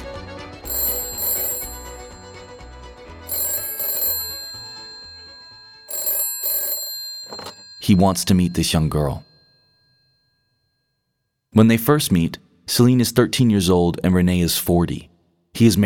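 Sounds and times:
telephone ringing: 0.6s - 11.0s
speech: 7.9s - 9.3s, 11.6s - 15.8s.

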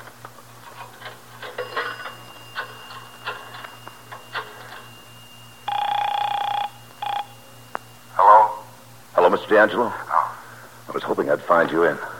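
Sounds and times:
brief tone: 1.4s - 9.8s
telephone being dialed in a phone booth: 1.7s - 7.9s
speech: 9.5s - 10.0s, 11.2s - 12.1s.

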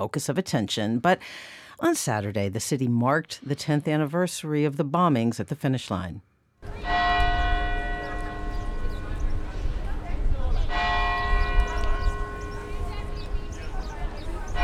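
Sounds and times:
speech: 0.0s - 6.9s
crowd noise: 6.6s - 14.6s
large church bell tolling: 6.7s - 9.7s, 10.7s - 13.7s, 14.5s - 14.6s.

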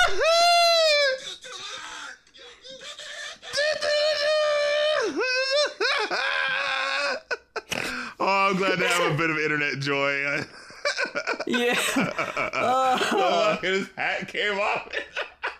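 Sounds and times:
person screaming happily: 0.0s - 2.2s, 2.8s - 7.4s, 12.6s - 13.6s
laughter: 2.5s - 9.4s, 10.2s - 15.5s
speech: 8.6s - 10.6s, 11.5s - 15.1s.

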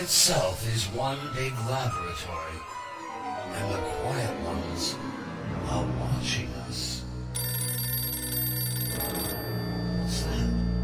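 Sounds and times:
speech: 0.0s - 7.0s
telephone ringing with an electronic bell tone: 7.4s - 10.8s.

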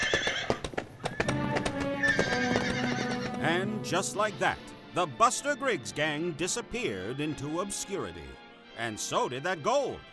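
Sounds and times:
horses neighing as riders set off: 0.0s - 3.5s
horse hooves clip-clopping: 0.0s - 3.7s
speech: 3.6s - 10.1s.

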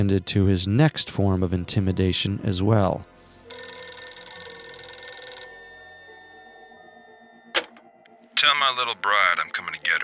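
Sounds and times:
speech: 0.0s - 3.6s, 8.7s - 9.2s
old-fashioned home telephone bell ringing: 3.5s - 7.7s.

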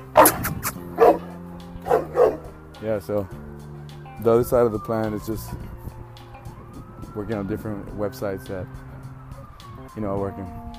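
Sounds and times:
friendly dog barking in short bright yips: 0.1s - 2.5s
speech: 2.8s - 5.7s, 7.2s - 8.9s, 10.0s - 10.6s.

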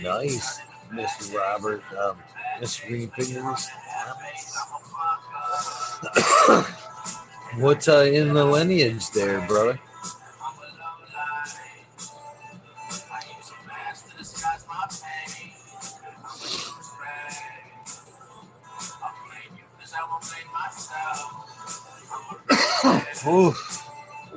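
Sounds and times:
speech: 0.0s - 6.8s, 7.5s - 10.2s
person coughing harshly after inhaling from a dab: 5.9s - 6.8s, 22.5s - 23.6s.

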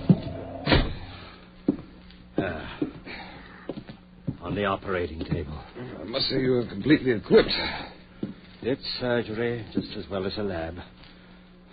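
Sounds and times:
door kicked shut with a heavy booming thud: 0.0s - 1.2s
sharp bump: 0.0s - 1.2s
speech: 4.5s - 7.9s, 8.6s - 11.0s.

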